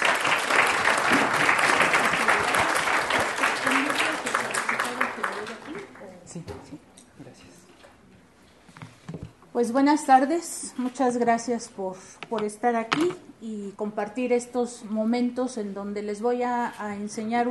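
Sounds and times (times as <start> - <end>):
audience applause: 0.0 - 6.0
speech: 9.6 - 17.4.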